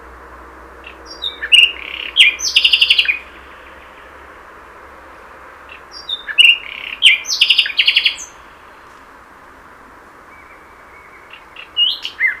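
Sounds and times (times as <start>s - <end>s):
common nightingale Luscinia megarhynchos singing: 0.8s - 4.3s, 5.2s - 9.1s, 10.2s - 12.3s.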